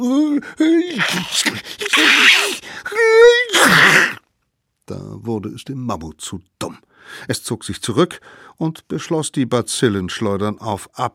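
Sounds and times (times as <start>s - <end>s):
speech: 0.0s - 4.2s, 4.9s - 11.1s
person acting out sneezes: 0.8s - 2.9s, 3.5s - 4.2s.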